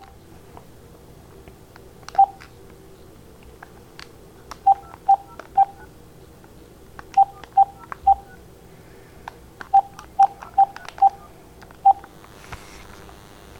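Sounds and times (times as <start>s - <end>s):
telephone keypad dialing tones: 2.1s - 2.4s, 4.7s - 5.9s, 7.1s - 8.4s, 9.7s - 12.0s.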